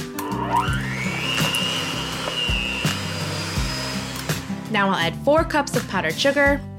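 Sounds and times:
electric mixer beating softened butter and tahini in a deep mixing bowl: 0.0 - 4.9
speech: 4.7 - 6.7.

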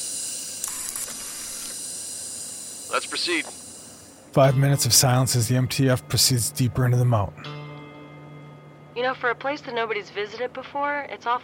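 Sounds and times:
steam hissing from a pipe: 0.0 - 0.6, 1.5 - 4.2
speech: 2.9 - 3.6, 4.4 - 7.6, 9.0 - 11.4.

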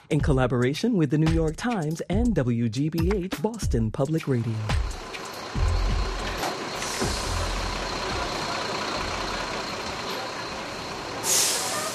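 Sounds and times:
speech: 0.1 - 5.0
heavy buses rumbling as they pull in: 4.2 - 11.9
bus air brake hiss: 6.4 - 7.5, 11.2 - 11.9.

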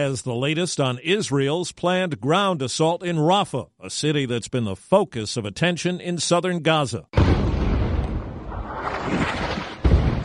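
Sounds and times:
speech: 0.0 - 7.4
deep rumbling explosions: 7.2 - 10.2.

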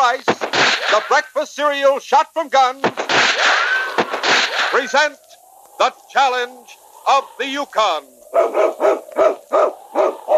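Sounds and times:
speech: 0.1 - 5.2, 5.8 - 10.3
sled dog lead dog barking: 8.3 - 10.3.

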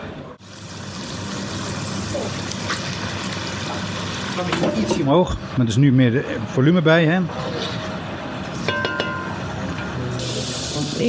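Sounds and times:
calamari sizzling and crackling as it fries in a hot pan: 0.4 - 5.0, 10.2 - 11.0
speech: 4.4 - 7.6.

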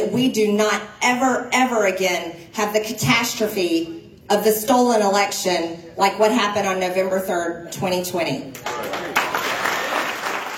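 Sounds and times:
speech: 0.1 - 9.5
applause: 8.6 - 10.5
large crowd yelling and cheering: 8.6 - 10.5.

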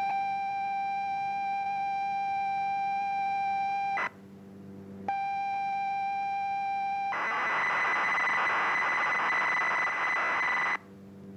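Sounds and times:
constant carrier tone: 0.0 - 11.3
computer program data tones broadcast over radio: 7.1 - 10.8
dense noisy warbling: 7.2 - 10.8.

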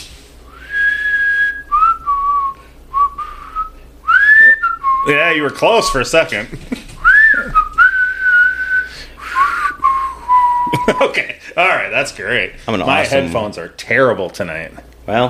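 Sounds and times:
person whistling a slow wavering tune: 0.5 - 5.2, 7.0 - 11.1
speech: 5.0 - 6.8, 10.9 - 15.2
laughter: 6.3 - 7.6, 10.6 - 11.4.

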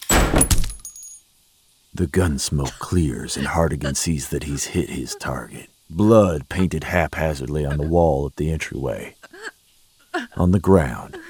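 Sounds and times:
door bursting open: 0.0 - 0.8
laughter: 2.0 - 8.2, 10.2 - 11.2
speech: 2.0 - 9.6, 10.4 - 11.2.

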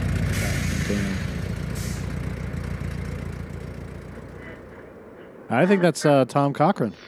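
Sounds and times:
deep car engines idling and revving in a film: 0.0 - 5.4
brief hiss: 0.3 - 2.2
speech: 0.9 - 1.3, 5.5 - 7.0.

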